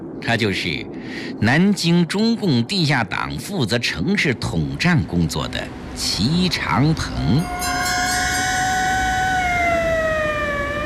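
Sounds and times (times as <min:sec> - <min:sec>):
speech: 0:00.2 - 0:08.0
police car siren: 0:07.1 - 0:10.8.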